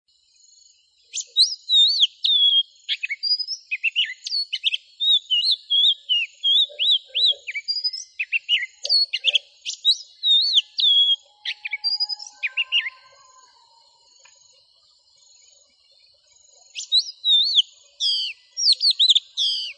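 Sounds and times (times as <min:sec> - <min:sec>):
oriental magpie robin: 0:01.1 - 0:13.6, 0:16.6 - 0:19.7.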